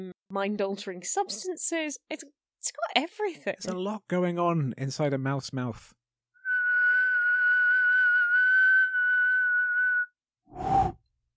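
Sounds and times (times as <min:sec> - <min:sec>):
speech: 0:00.0 - 0:06.0
man whistling a thin tone attempting to imitate a jet engine: 0:06.4 - 0:11.0.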